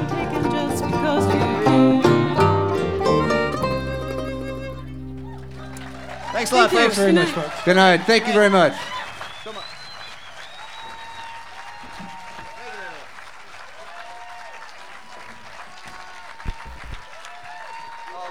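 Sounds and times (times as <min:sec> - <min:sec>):
laughter: 0:00.0 - 0:09.6
audience applause: 0:00.0 - 0:18.2
whistles: 0:02.4 - 0:12.9, 0:16.3 - 0:18.0
speech: 0:06.4 - 0:09.0.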